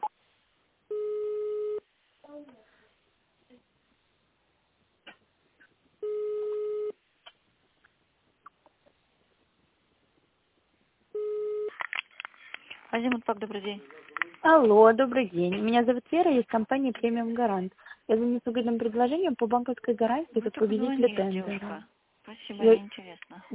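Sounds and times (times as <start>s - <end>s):
telephone line beeps while waiting for an operator: 0.9s - 1.8s, 6.0s - 7.0s, 11.2s - 11.8s
faint scattered noises: 1.8s - 23.5s
speech: 13.0s - 23.5s.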